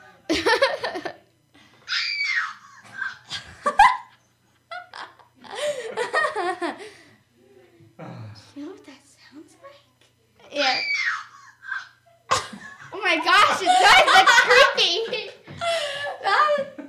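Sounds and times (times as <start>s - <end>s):
laughter: 0.0s - 1.2s, 2.6s - 7.1s, 11.6s - 16.8s
girl's high-pitched screams: 1.9s - 3.2s, 10.5s - 11.9s.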